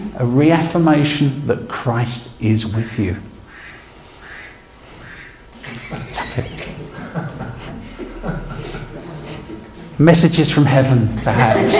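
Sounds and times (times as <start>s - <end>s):
speech: 0.2s - 3.3s, 10.0s - 11.7s
duck quacking: 3.5s - 7.0s
laughter: 5.5s - 10.0s, 10.8s - 11.7s.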